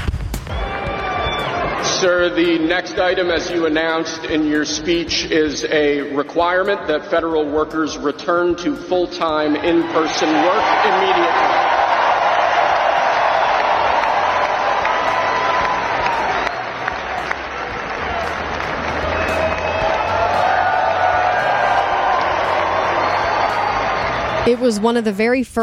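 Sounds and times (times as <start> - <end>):
large crowd at Capital One Arena screaming and cheering: 0.4 - 4.6, 9.4 - 24.8
speech: 2.0 - 11.6, 24.5 - 25.6
arena crowd applause: 10.0 - 24.8.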